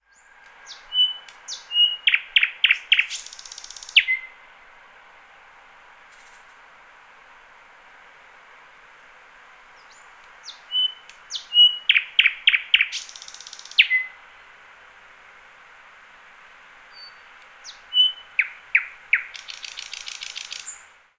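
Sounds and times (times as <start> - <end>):
Luscinia luscinia singing: 0.0 - 4.6, 9.7 - 14.5, 16.8 - 21.0.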